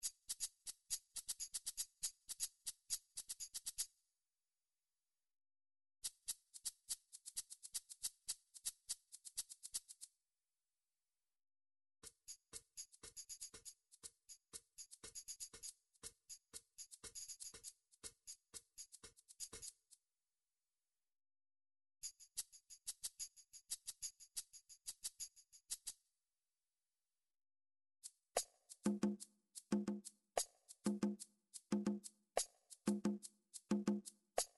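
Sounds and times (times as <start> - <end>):
MIDI shakers: 0.0 - 4.0, 6.0 - 10.2, 12.0 - 20.0, 22.0 - 26.0, 28.0 - 34.5
MIDI drums: 28.9 - 30.1, 30.9 - 32.1, 32.9 - 34.1.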